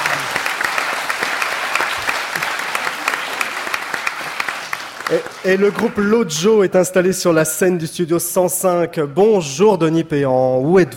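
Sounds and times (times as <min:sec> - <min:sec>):
studio audience applause: 0:00.0 - 0:06.4
speech: 0:05.1 - 0:10.9.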